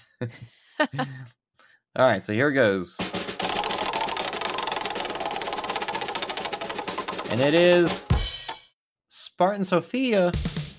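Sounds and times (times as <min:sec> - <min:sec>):
speech: 0:00.2 - 0:01.4, 0:02.0 - 0:03.2, 0:07.3 - 0:08.1, 0:09.4 - 0:10.7
spinning prize wheel sound effect: 0:03.4 - 0:08.1.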